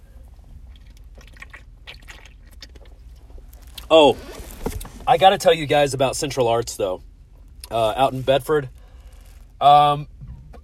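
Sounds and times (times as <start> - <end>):
low rumble: 0.0 - 10.6
person sipping and swallowing a beverage: 0.6 - 4.9
speech: 3.9 - 4.3, 5.1 - 7.1, 7.7 - 8.8, 9.6 - 10.1.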